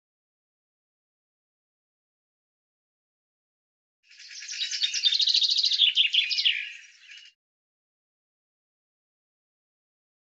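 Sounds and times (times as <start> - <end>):
common chaffinch song: 4.1 - 7.4.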